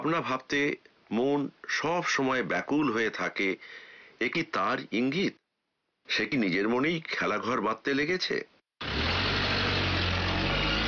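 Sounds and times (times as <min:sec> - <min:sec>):
speech: 0:00.0 - 0:05.4, 0:06.1 - 0:08.9
car engine droning as the car pulls away through a dusty city: 0:08.8 - 0:10.8.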